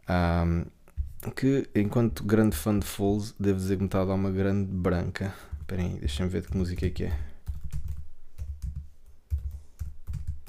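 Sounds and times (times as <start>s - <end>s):
speech: 0.1s - 7.3s
typing on a computer keyboard: 5.5s - 10.4s.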